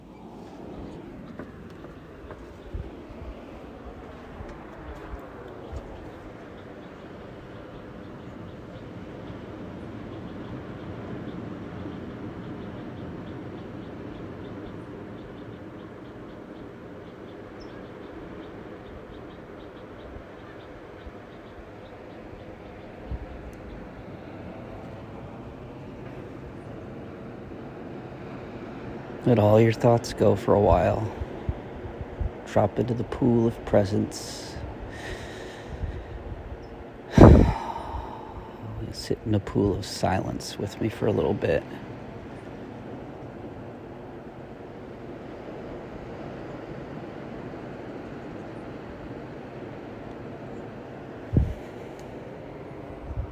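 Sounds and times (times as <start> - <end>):
wind buffeting the microphone: 0.0 - 15.9, 17.6 - 27.3, 29.1 - 39.6, 51.2 - 51.8, 52.8 - 53.3
ocean waves washing outdoors: 0.0 - 53.3
speech: 29.2 - 31.2, 32.5 - 34.4, 39.2 - 41.9.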